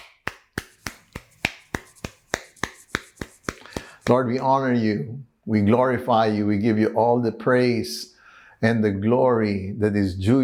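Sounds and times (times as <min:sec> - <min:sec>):
people clapping rhythmically: 0:00.0 - 0:04.2
speech: 0:04.1 - 0:10.4.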